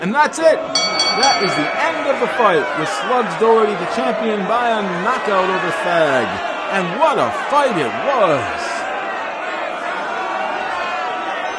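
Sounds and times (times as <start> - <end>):
speech: 0.0 - 8.7
boxing fight crowd cheering wildly: 0.0 - 11.5.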